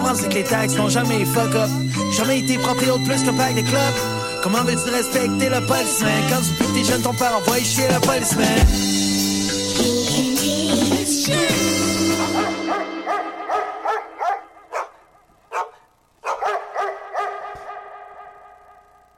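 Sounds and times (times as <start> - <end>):
speech: 0.1 - 8.9, 9.8 - 11.5
small dogs yapping in high-pitched bursts: 12.1 - 18.9.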